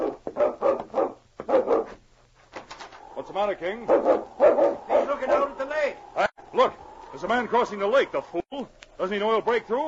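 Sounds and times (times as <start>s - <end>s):
dog barking: 0.0s - 2.0s, 3.8s - 5.6s
speech: 3.4s - 9.8s.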